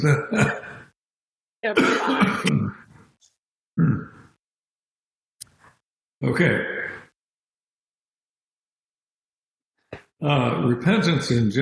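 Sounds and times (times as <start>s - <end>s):
speech: 0.0s - 0.7s, 1.6s - 2.8s, 3.8s - 4.2s, 6.2s - 6.7s, 10.2s - 11.6s
person clearing throat: 0.0s - 0.8s, 1.7s - 2.9s, 3.8s - 4.3s.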